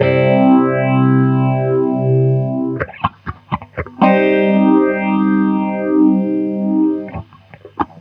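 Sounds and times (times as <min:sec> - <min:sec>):
guitar: 0:00.0 - 0:07.9.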